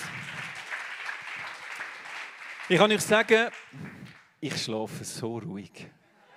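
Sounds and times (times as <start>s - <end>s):
crowd clapping: 0.0s - 4.6s
speech: 2.7s - 6.0s.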